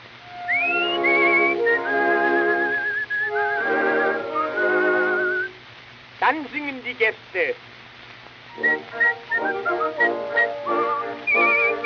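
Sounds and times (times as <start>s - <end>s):
steady backing of sustained tones: 0.0s - 5.7s, 8.4s - 11.8s
person whistling a warbling tune imitating little birds singing: 0.3s - 5.5s, 8.5s - 11.8s
speech: 6.3s - 7.8s, 8.6s - 10.8s.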